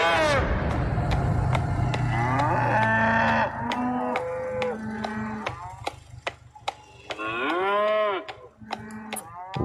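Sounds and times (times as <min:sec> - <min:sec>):
quiet low rumble of a vehicle running: 0:00.2 - 0:07.3
cow bellowing in long moos while chasing a calf in a truck: 0:02.0 - 0:05.9, 0:06.9 - 0:09.6.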